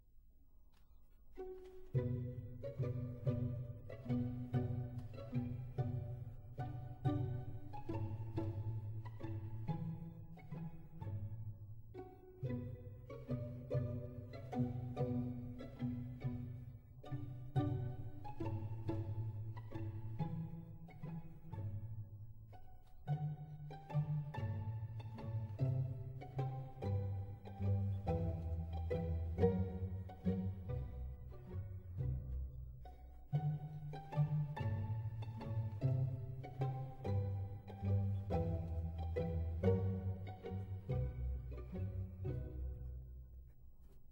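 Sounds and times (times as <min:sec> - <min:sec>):
solo strings playing a romance pizzicato: 0:00.9 - 0:44.1.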